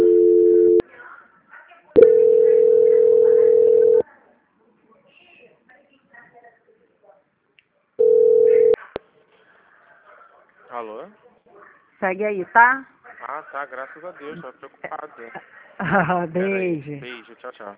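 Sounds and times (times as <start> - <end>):
telephone call transfer tones on a phone line: 0.0 - 0.8, 2.0 - 4.0, 8.0 - 8.8
faint scattered noises: 0.8 - 16.1
speech: 12.1 - 17.7.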